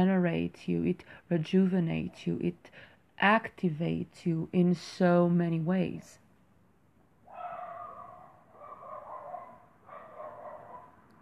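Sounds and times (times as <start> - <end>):
speech: 0.0 - 6.2
neighborhood dogs barking: 7.3 - 11.0.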